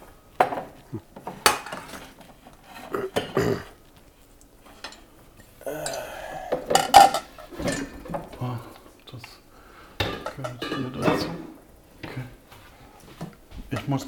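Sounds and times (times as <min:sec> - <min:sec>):
dishes and a pan clattering while being unloaded from a dishwasher: 0:00.4 - 0:03.8, 0:04.6 - 0:05.6, 0:06.5 - 0:08.5, 0:10.0 - 0:14.0.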